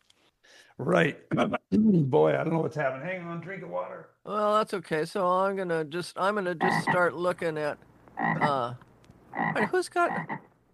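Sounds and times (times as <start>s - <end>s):
speech: 0.8s - 10.5s
frog croaking: 6.6s - 7.1s, 8.2s - 10.5s.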